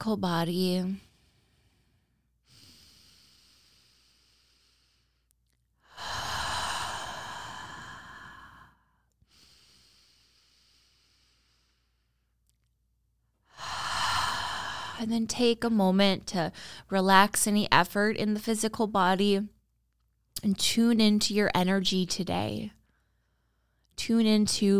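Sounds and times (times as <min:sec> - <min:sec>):
speech: 0:00.0 - 0:01.1, 0:15.0 - 0:19.6, 0:20.4 - 0:22.8, 0:24.0 - 0:24.7
slow deep breathing in through the nose and out through the mouth: 0:01.0 - 0:12.3, 0:13.4 - 0:15.0.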